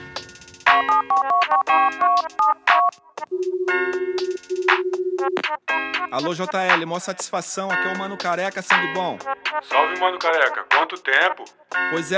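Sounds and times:
phone placing an outgoing call with electronic beeps and tones: 0.7 - 5.5
steady low telephone ringing tone: 0.7 - 5.5
speech: 6.2 - 12.1.

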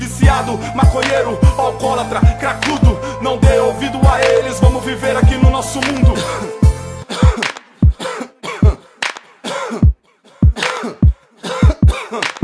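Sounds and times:
speech: 0.3 - 6.6
harsh coughs: 7.1 - 12.4.

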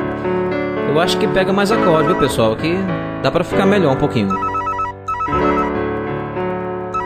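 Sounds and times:
speech: 0.2 - 4.5
telephone ringing with a melodic ringtone: 1.7 - 2.6, 4.2 - 5.8.

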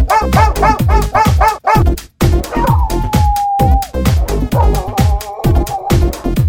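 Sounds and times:
higher whining dog yelps: 0.1 - 1.8, 2.4 - 6.3
dogs barking and yipping: 0.1 - 6.3.

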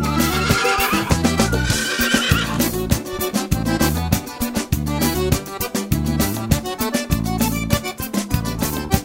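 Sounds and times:
horse whinnying: 0.0 - 2.8
thumping rhythmic bass line: 0.0 - 5.3
loud band with a thumping rhythmic bass line: 0.0 - 8.7.

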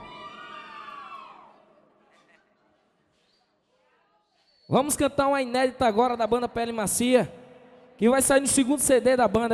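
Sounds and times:
audience at a band's live show squealing and screaming: 0.0 - 1.7
soft crowd noise: 0.0 - 4.0
speech: 4.7 - 7.4, 8.0 - 9.5.

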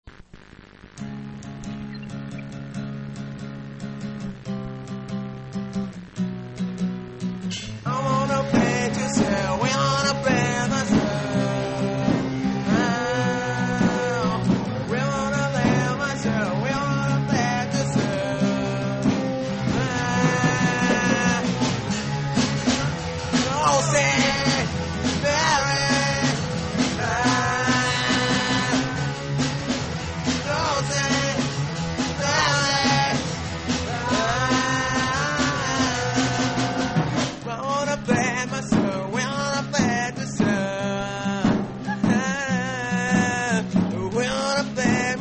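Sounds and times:
rock scream: 1.0 - 45.1.

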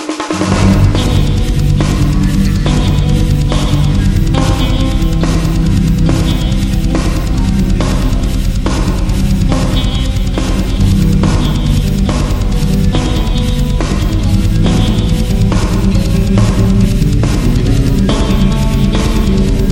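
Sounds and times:
prelude in G major: 0.2 - 19.7.

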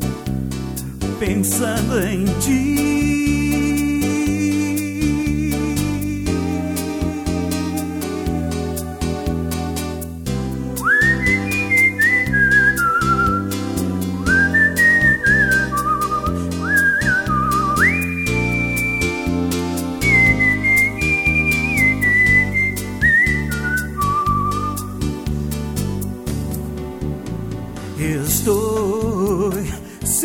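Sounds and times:
sustained instrumental backing music: 0.0 - 30.2
speech: 1.2 - 3.9
person whistling a song: 3.2 - 10.1, 10.8 - 25.1.

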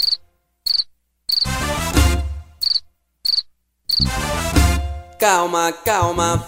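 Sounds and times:
cricket chirping: 0.0 - 1.5, 2.6 - 4.1
loud bass-heavy music: 1.5 - 2.6, 4.0 - 6.4
speech: 4.0 - 4.4, 5.2 - 6.4.

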